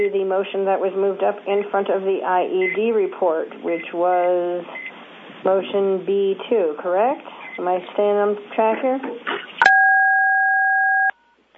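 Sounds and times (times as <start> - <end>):
speech: 0.0 - 4.8, 5.4 - 9.6
phone keypad tone from pressing the pound key on a conference line: 9.6 - 11.2.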